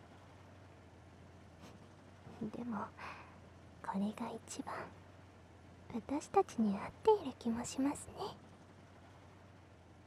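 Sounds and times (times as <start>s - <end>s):
heavy tank engine rumbling: 0.0s - 10.0s
speech: 2.4s - 3.2s, 3.8s - 5.0s, 5.9s - 8.4s.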